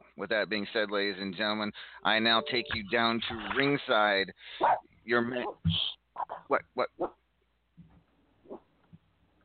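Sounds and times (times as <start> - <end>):
speech: 0.2 - 7.1
guard dog barking: 4.6 - 4.8.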